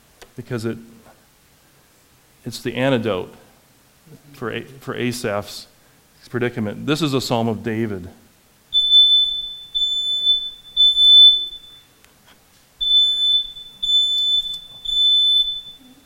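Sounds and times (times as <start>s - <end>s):
speech: 0.4s - 1.0s, 2.4s - 3.4s, 4.1s - 8.2s
fire alarm beeping: 8.7s - 12.0s, 12.8s - 16.0s.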